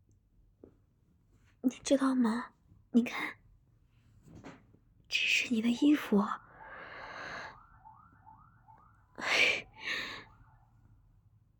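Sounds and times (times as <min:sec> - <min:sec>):
speech: 0:01.6 - 0:03.4, 0:05.1 - 0:06.4
police siren wailing: 0:05.7 - 0:11.1.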